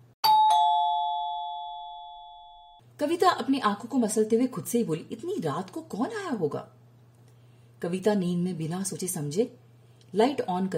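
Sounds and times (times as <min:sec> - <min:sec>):
house doorbell ringing with two chimes at night: 0:00.2 - 0:02.8
speech: 0:03.0 - 0:06.8, 0:07.8 - 0:10.7.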